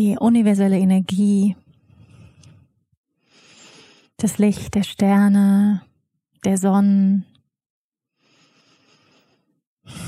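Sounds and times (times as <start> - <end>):
speech: 0.0 - 1.6, 4.2 - 7.3
gentle breathing in and out: 1.8 - 4.2, 8.1 - 10.0.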